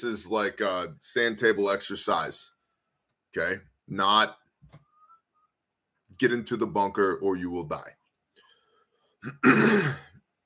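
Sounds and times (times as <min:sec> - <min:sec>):
speech: 0:00.0 - 0:02.5, 0:03.3 - 0:04.8, 0:06.2 - 0:08.0, 0:09.2 - 0:10.1
person clearing throat: 0:09.2 - 0:10.2.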